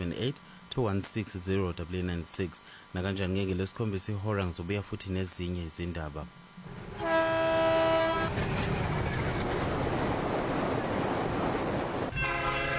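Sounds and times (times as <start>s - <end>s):
speech: 0.1s - 6.8s
passing train rumble: 6.6s - 12.7s
train horn blast: 6.9s - 8.5s, 12.1s - 12.7s.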